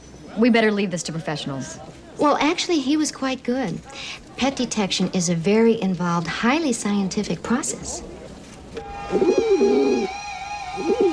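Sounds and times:
speech: 0:00.4 - 0:08.2, 0:09.1 - 0:10.1
albino pigeon cooing: 0:08.9 - 0:11.1.

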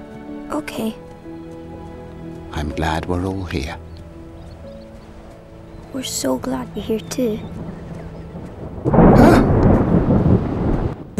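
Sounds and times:
speech: 0:00.5 - 0:01.1, 0:02.5 - 0:03.9, 0:05.9 - 0:07.8
rain-like hiss: 0:01.1 - 0:11.1
thunder rumbling: 0:04.1 - 0:11.1.

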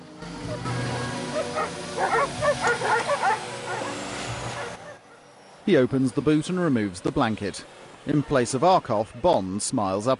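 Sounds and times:
guard dogs barking at kennels by an airfield: 0:00.4 - 0:05.3
speech: 0:05.6 - 0:10.1.

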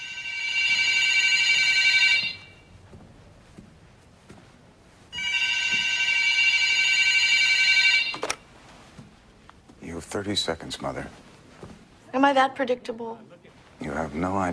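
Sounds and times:
telephone ringing with bright buzzy tone: 0:00.0 - 0:02.7, 0:05.1 - 0:08.4
speech: 0:10.2 - 0:11.3, 0:12.1 - 0:14.5.

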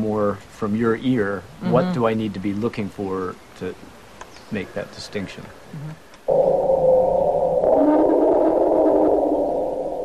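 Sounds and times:
speech: 0:00.2 - 0:03.9, 0:04.5 - 0:06.6
elephant lost call low rumble: 0:05.7 - 0:10.0.

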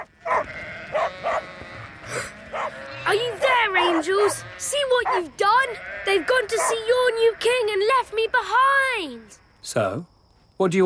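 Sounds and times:
sheep running around on a farm bleating: 0:00.0 - 0:08.0
speech: 0:04.0 - 0:10.8.

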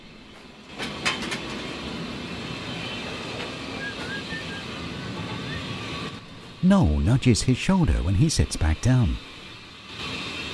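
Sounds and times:
steam locomotive cab roar and hiss: 0:00.0 - 0:10.5
speech: 0:06.6 - 0:09.3.

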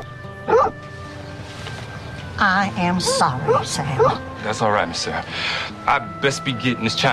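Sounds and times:
dog barking at a wagon: 0:00.5 - 0:00.8, 0:03.0 - 0:04.2
speech: 0:02.4 - 0:07.1.

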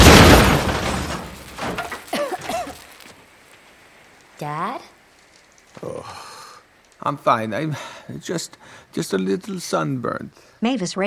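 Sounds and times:
scattered rattling: 0:00.0 - 0:02.6
crash of shattering glass window: 0:00.0 - 0:03.0
speech: 0:05.8 - 0:06.2, 0:07.0 - 0:11.0.

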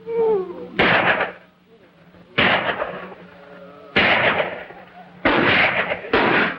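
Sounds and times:
low hum: 0:00.0 - 0:06.5
gunshots fired from inside a cabin at cattle rustlers: 0:00.8 - 0:01.4, 0:02.4 - 0:03.2, 0:04.0 - 0:06.5.

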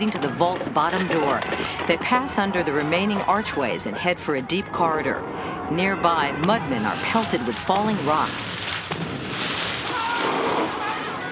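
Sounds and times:
speech: 0:00.0 - 0:09.0
water bursting into a stone corridor: 0:06.8 - 0:11.2.

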